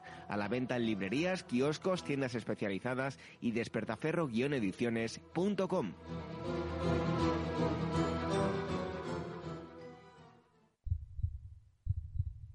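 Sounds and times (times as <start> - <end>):
speech: 0.3 - 7.0
dense busy music: 5.2 - 9.9
heartbeat thuds in paired beats: 10.8 - 12.5.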